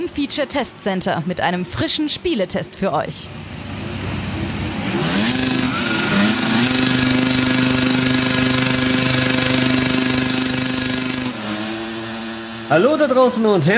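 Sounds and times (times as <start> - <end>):
speech: 0.0 - 3.9, 12.7 - 13.7
racing motorcycle engines revving at race start in a video game: 3.3 - 13.7.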